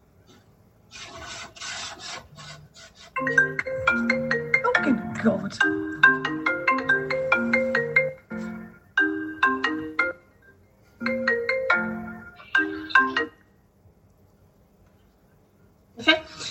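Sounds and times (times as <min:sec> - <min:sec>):
melodic phone ringtone playing through laptop: 0:03.2 - 0:13.4
speech: 0:05.2 - 0:06.2.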